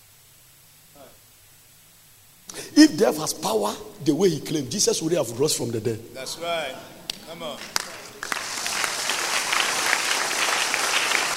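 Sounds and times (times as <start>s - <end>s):
speech: 2.8s - 7.8s
audience clapping: 6.7s - 11.3s.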